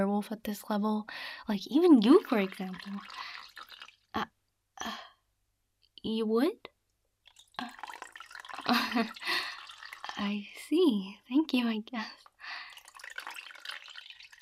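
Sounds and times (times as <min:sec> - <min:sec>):
speech: 0:00.0 - 0:03.4, 0:04.2 - 0:05.0, 0:06.0 - 0:06.7, 0:08.7 - 0:09.4, 0:10.2 - 0:12.2
water poured and trickling in short splashy bursts: 0:01.6 - 0:04.3, 0:07.2 - 0:10.4, 0:12.2 - 0:14.4.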